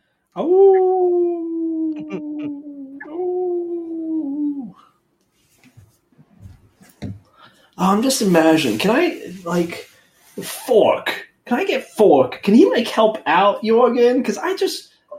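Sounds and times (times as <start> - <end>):
puppy howling: 0.4 - 4.7
faint scuffling: 5.3 - 7.3
speech: 7.8 - 14.9.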